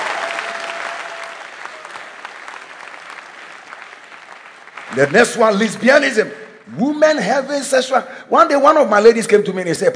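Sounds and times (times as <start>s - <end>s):
congregation clapping hands: 0.0s - 6.9s
speech: 4.9s - 9.9s.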